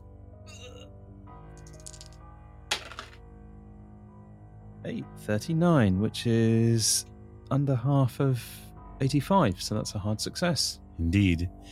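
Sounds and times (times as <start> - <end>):
small amethyst die clattering onto a hard floor: 1.6 - 3.2
speech: 4.8 - 11.7.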